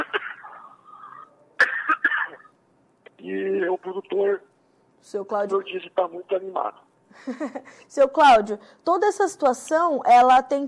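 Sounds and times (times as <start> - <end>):
person coughing harshly: 0.0 - 2.5
speech: 3.3 - 10.6.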